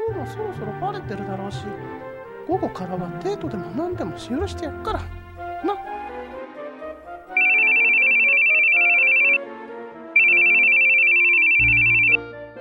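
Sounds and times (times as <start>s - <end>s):
speech: 0.3s - 5.9s
mobile phone ringtone with soft melodic accompaniment: 7.3s - 9.5s, 10.2s - 12.2s.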